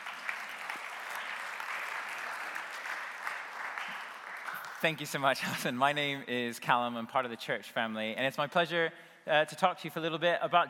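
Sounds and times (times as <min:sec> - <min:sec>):
church audience applauding: 0:00.0 - 0:05.3
speech: 0:04.8 - 0:10.6.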